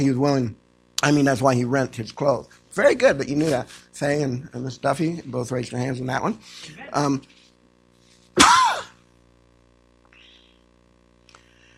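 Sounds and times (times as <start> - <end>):
speech: 0.0 - 7.4
person coughing throaty voiced coughs: 8.4 - 9.0.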